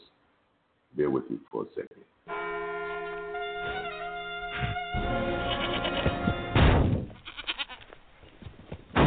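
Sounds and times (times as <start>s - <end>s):
speech: 1.1s - 1.9s
goat bleating: 3.6s - 6.5s, 7.2s - 8.0s
heavy thump: 6.5s - 7.2s.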